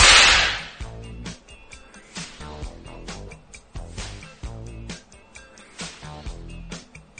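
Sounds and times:
rhythmic snapping percussive hits: 0.0 - 0.9
whip cracking: 0.0 - 0.9
musical backdrop: 0.0 - 7.1.

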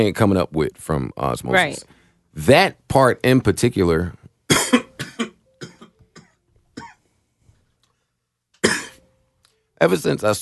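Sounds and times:
speech: 0.0 - 4.7, 9.8 - 10.4
person coughing: 4.5 - 7.0, 8.6 - 9.0.

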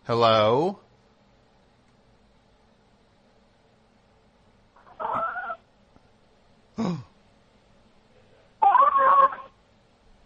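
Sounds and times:
speech: 0.1 - 0.8, 6.8 - 7.1
cat meowing: 4.8 - 5.6, 8.6 - 9.6.

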